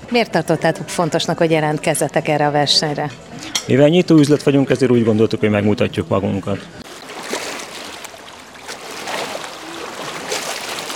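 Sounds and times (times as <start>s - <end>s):
speech: 0.1s - 6.8s
gentle lake waves lapping and splashing: 6.8s - 10.9s.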